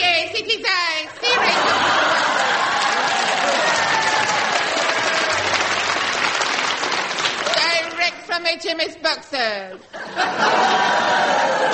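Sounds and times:
laughter: 1.1 - 5.5, 9.7 - 11.7
large audience applauding: 1.5 - 8.1, 10.7 - 11.7
speech: 8.4 - 11.7.

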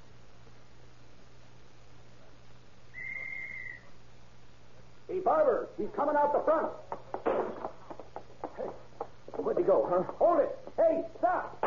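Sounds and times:
constant low hum and hiss of noise: 0.0 - 11.6
whistle being blown: 2.9 - 4.0
speech: 5.1 - 6.9, 9.6 - 11.6.

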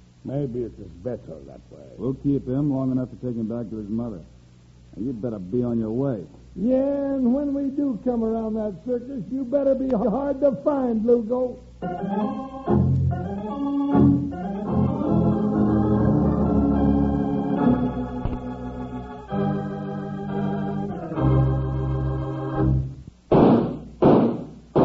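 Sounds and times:
speech: 0.2 - 4.4, 5.0 - 14.2
orchestral music: 11.8 - 23.0
gunshots: 23.3 - 24.8.

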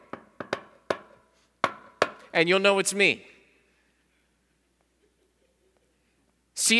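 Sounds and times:
sharp knocks on a door: 0.0 - 2.2
speech: 2.3 - 3.3.

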